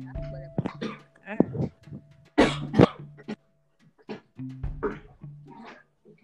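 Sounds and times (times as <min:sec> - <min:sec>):
person coughing harshly: 0:00.7 - 0:01.0, 0:02.4 - 0:03.0.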